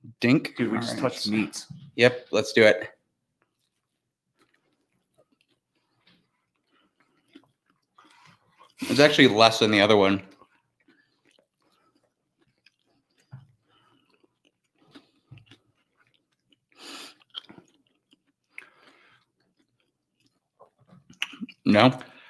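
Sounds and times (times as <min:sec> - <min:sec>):
speech: 0:00.2 - 0:03.0, 0:08.8 - 0:10.3, 0:21.6 - 0:22.1
wet chewing and crunching of food: 0:03.3 - 0:21.7
soft mouth clicks: 0:21.1 - 0:21.7.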